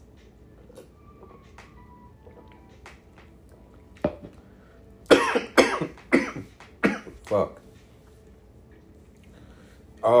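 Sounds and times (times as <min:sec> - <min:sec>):
person coughing: 0:05.1 - 0:07.2
speech: 0:07.3 - 0:07.6.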